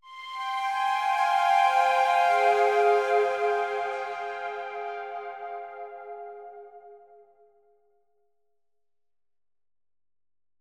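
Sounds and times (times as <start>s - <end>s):
synthesizer in F minor: 0.0s - 7.2s.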